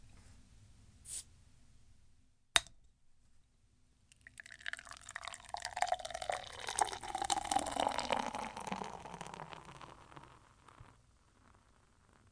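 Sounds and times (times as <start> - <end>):
beer pouring into a glass: 4.1 - 12.2.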